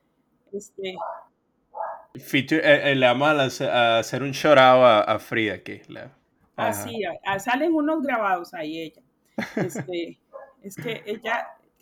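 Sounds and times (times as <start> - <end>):
speech: 0.5 - 1.2, 2.2 - 11.8
small dog barking: 1.0 - 2.2, 10.3 - 11.6
laughter: 6.6 - 6.9, 9.4 - 10.0, 10.7 - 11.4.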